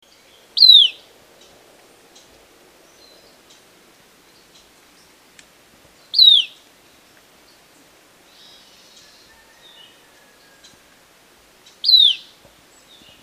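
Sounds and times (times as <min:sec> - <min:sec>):
Mountain Elaenia calling: 0:00.4 - 0:04.8, 0:06.1 - 0:06.7, 0:08.3 - 0:13.2.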